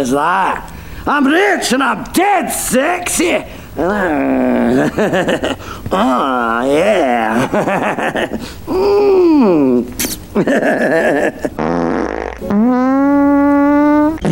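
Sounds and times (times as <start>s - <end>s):
speech: 0.0s - 11.8s, 12.4s - 13.3s
laughter: 4.4s - 8.6s, 10.3s - 11.6s
farting: 11.4s - 14.3s.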